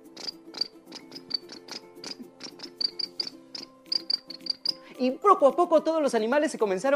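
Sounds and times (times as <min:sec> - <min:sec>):
crickets chirping: 0:00.1 - 0:04.8
speech: 0:05.0 - 0:06.9.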